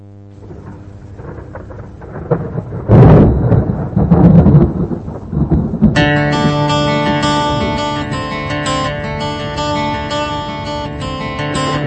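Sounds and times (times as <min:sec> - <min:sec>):
rain hissing in a storm: 0:00.3 - 0:11.8
rolling thunder rumbling and cracking in a storm: 0:00.4 - 0:08.7
sustained instrumental music tones: 0:06.0 - 0:11.8.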